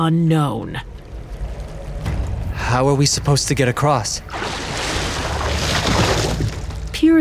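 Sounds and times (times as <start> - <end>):
speech: 0.0 - 1.0, 2.7 - 5.0, 7.0 - 7.1
low wind-like rumble: 0.0 - 7.1
small boat gliding through river water: 0.0 - 7.1
splashing and rushing river water: 3.6 - 6.9.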